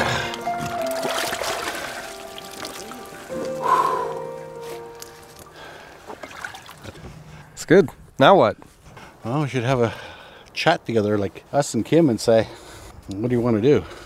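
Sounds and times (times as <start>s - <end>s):
sloshing splashes of person climbing out of water: 0.0s - 7.5s
speech: 7.7s - 14.0s.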